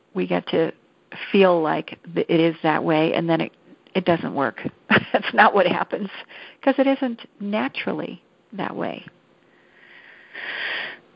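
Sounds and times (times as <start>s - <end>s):
speech: 0.2s - 9.2s
single deep airy hissing inhale: 9.5s - 11.0s.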